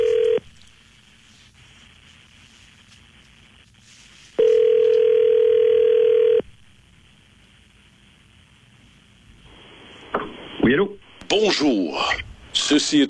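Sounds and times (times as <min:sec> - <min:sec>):
telephone line tones as a call is dialed: 0:00.0 - 0:00.4, 0:04.4 - 0:06.4
speech: 0:11.4 - 0:13.0.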